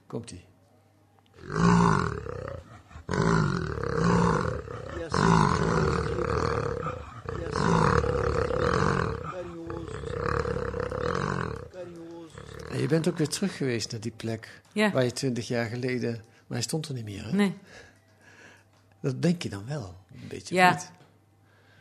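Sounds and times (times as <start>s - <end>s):
speech: 0.1s - 0.5s, 1.4s - 1.7s, 12.8s - 17.9s, 19.0s - 21.0s
angry jaguar growling and roaring: 1.4s - 13.4s.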